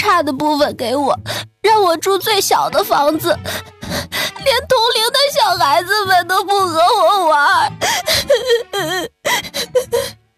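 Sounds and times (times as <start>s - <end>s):
speech: 0.0s - 10.2s
child crying: 6.8s - 10.2s.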